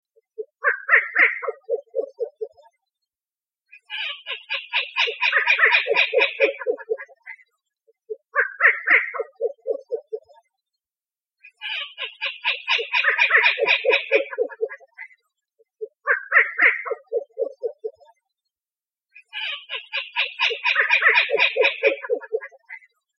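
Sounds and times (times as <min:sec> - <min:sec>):
Rufous-legged owl calling: 0:00.4 - 0:02.6, 0:03.8 - 0:07.4, 0:08.1 - 0:10.3, 0:11.6 - 0:15.1, 0:15.8 - 0:18.0, 0:19.3 - 0:22.9.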